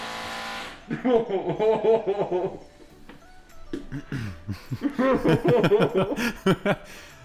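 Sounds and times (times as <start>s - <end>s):
neighbour's power drill drilling into wall: 0.0s - 0.9s
person laughing and chuckling: 0.9s - 2.6s, 3.7s - 6.9s.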